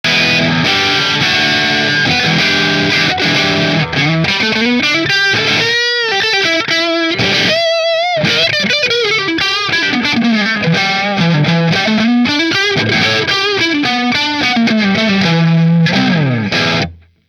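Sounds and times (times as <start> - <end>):
single-cut electric guitar: 0.1 - 17.2.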